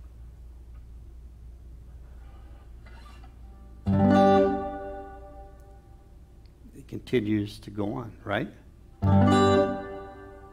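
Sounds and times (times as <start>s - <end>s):
plucked string note ringing with reverb: 3.8s - 5.5s, 9.0s - 10.5s
speech: 6.9s - 8.6s.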